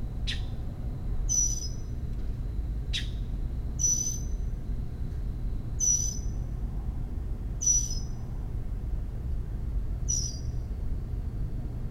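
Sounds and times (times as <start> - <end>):
low background hum: 0.0 - 11.8
Northern mockingbird calling in protest in Maryland USA: 1.3 - 1.9, 2.9 - 3.2, 3.8 - 4.3, 5.8 - 6.3, 7.6 - 8.2, 10.1 - 10.5.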